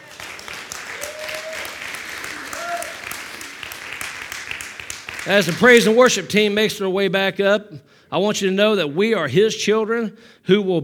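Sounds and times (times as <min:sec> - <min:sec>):
audience at a church service clapping: 0:00.0 - 0:06.2
speech: 0:05.2 - 0:10.8.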